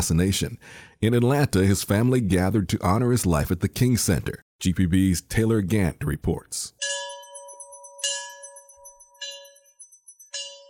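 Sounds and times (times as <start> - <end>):
speech: 0.0 - 7.1
commemorative bell ringing: 6.8 - 10.6.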